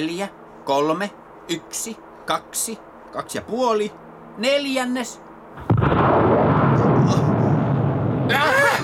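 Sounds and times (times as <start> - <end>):
speech: 0.0 - 6.1, 8.3 - 8.8
return rocket engine igniting with a loud broadband roar: 5.6 - 8.8.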